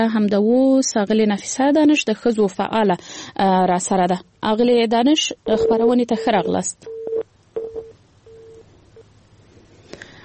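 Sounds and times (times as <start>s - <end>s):
speech: 0.0s - 7.3s
telephone line beeps after a dropped call: 5.5s - 9.1s.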